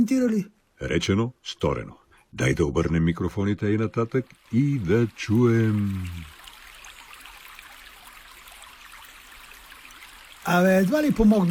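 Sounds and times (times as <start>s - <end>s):
speech: 0.0s - 6.3s, 10.5s - 11.4s
river water flowing: 4.0s - 11.4s.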